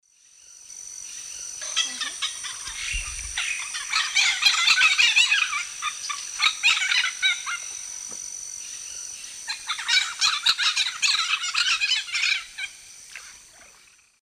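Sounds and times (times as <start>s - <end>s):
Ara severus chestnut-fronted macaw flight calls in South American Eastern Lowlands: 1.6s - 8.2s, 9.4s - 13.4s.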